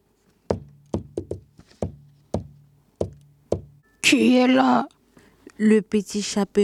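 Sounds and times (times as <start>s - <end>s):
knocking on a wooden door: 0.5s - 3.8s
speech: 4.1s - 5.0s, 5.6s - 6.6s.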